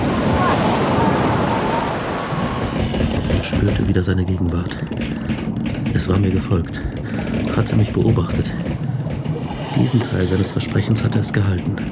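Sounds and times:
gusting wind in a storm at sea: 0.0 - 11.9
heavy waves in a storm at sea: 0.0 - 11.9
speech: 3.6 - 5.3, 5.9 - 8.8, 9.8 - 11.9.

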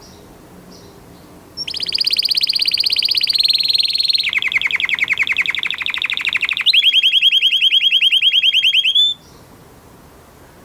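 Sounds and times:
male Belgian canary singing: 1.6 - 9.4.

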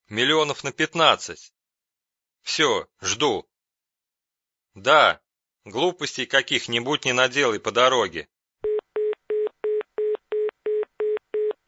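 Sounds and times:
speech: 0.1 - 1.6, 2.4 - 3.5, 4.8 - 8.3
rapid telephone busy signal beeps after a call ends: 8.7 - 11.6.

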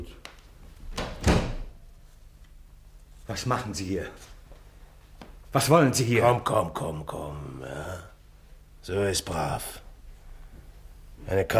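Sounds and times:
door shutting: 0.9 - 1.7
speech: 3.3 - 4.4, 5.5 - 8.1, 8.8 - 9.8, 11.2 - 11.5.

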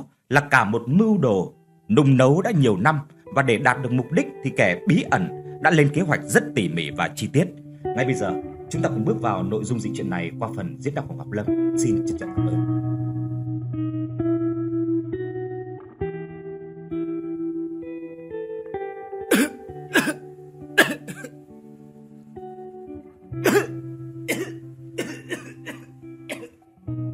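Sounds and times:
speech: 0.3 - 12.9
sustained low musical tones: 0.5 - 27.1
weary hoarse coughing from inside a thatched-roof house: 19.3 - 20.2, 20.8 - 21.4, 23.4 - 26.6.

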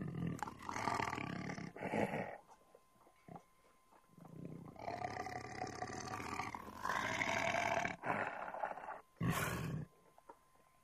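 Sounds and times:
tiger growling: 0.0 - 2.5, 4.2 - 9.9.

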